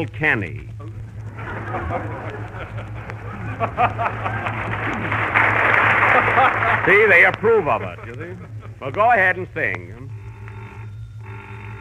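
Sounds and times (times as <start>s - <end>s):
speech: 0.0s - 0.8s, 1.4s - 2.9s, 3.6s - 4.5s, 6.4s - 10.0s
laughter: 1.3s - 9.3s
telephone ringing: 5.2s - 11.8s.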